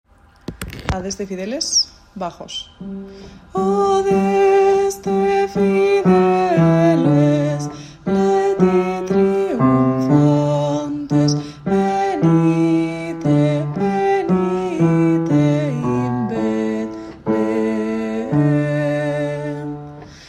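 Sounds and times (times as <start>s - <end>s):
bass part of a carol: 2.9s - 20.1s.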